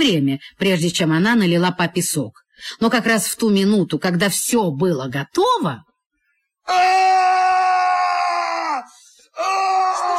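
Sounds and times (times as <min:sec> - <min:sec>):
speech: 0:00.0 - 0:05.9, 0:06.7 - 0:07.7
man screaming: 0:06.7 - 0:10.1.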